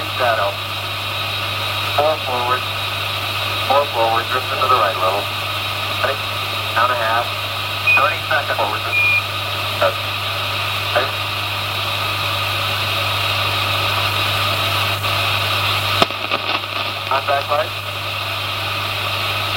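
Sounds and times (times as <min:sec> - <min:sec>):
brief radio-style voices: 0:00.0 - 0:00.6, 0:01.8 - 0:02.7, 0:03.6 - 0:11.3, 0:16.0 - 0:18.3
aircraft engine idling after touchdown then stopped: 0:00.0 - 0:19.5
speech: 0:00.2 - 0:00.8, 0:02.0 - 0:02.8, 0:03.7 - 0:05.4, 0:06.0 - 0:07.4, 0:08.0 - 0:09.2.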